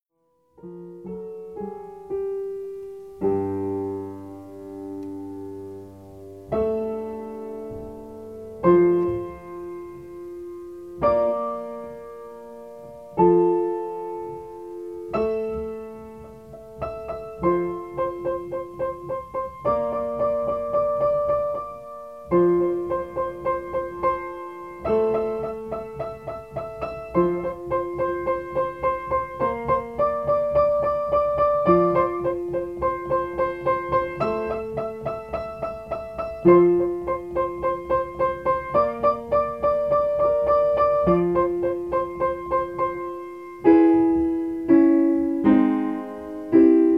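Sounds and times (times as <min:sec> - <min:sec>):
acoustic piano playing: 0:00.1 - 0:46.9.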